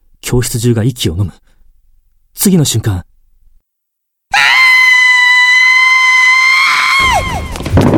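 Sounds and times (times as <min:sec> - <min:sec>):
speech: 0:00.3 - 0:01.4, 0:02.4 - 0:03.1
terrified girl screaming in a classroom: 0:04.3 - 0:07.6.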